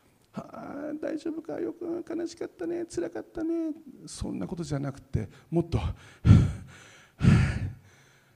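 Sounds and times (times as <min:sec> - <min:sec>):
speech: 0:01.0 - 0:06.5
heavy forceful breaths: 0:05.3 - 0:08.3.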